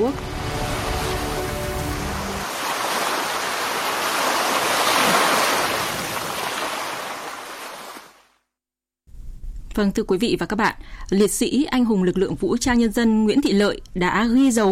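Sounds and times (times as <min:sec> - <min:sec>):
speech: 0:00.0 - 0:00.4, 0:09.8 - 0:14.7
sea waves washing against the shore at Sầm Sơn: 0:00.0 - 0:08.2.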